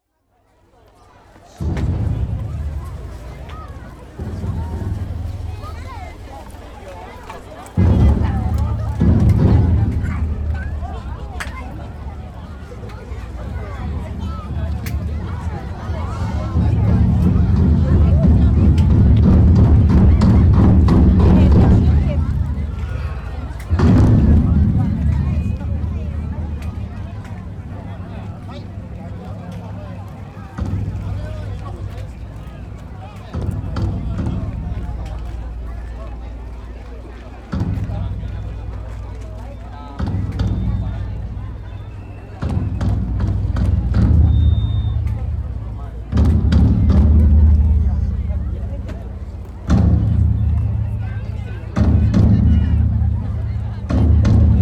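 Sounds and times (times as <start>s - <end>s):
festival crowd bustle: 0.0s - 54.5s
taiko drum performance: 1.6s - 6.6s, 7.8s - 35.8s, 37.5s - 38.9s, 40.0s - 54.5s.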